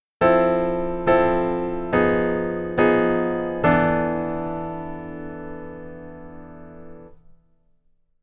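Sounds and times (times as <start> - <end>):
rootless piano keyboard voicing: 0.2 - 7.4.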